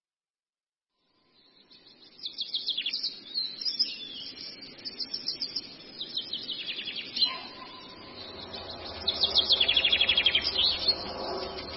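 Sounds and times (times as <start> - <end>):
Long-tailed shrike singing: 2.8 - 11.7.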